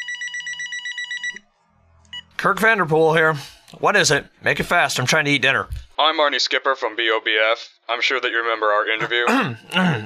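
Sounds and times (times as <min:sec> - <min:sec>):
telephone ringing with warbling electronic trill: 0:00.0 - 0:01.5
speech: 0:02.4 - 0:10.0.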